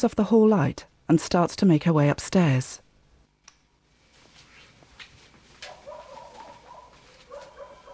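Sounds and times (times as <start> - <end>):
speech: 0.0 - 2.8
dogs barking: 5.6 - 7.9.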